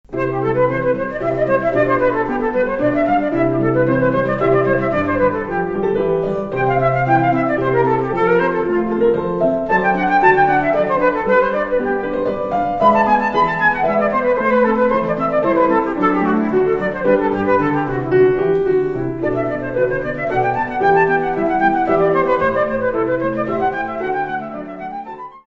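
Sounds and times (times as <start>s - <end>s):
basso continuo accompaniment: 0.0s - 25.5s.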